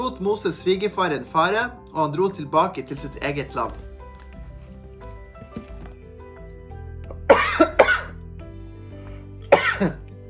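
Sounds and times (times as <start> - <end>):
speech: 0.1 - 3.8
person coughing: 7.3 - 8.2, 9.5 - 10.1.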